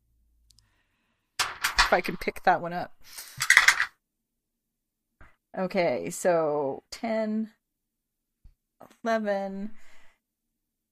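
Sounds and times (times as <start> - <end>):
several dice rolling on a table: 1.4 - 2.2, 3.4 - 3.9
speech: 1.9 - 3.4, 5.6 - 7.6, 8.8 - 9.8.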